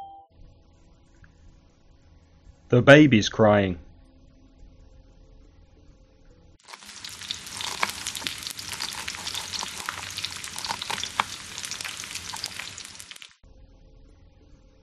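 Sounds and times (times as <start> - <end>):
speech: 2.7 - 3.9
food frying in a pan: 6.6 - 13.4.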